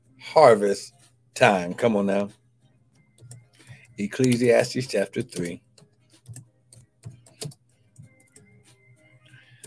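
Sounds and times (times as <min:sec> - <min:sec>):
speech: 0:00.3 - 0:02.4, 0:04.0 - 0:05.6
typing on a keyboard: 0:03.2 - 0:08.5.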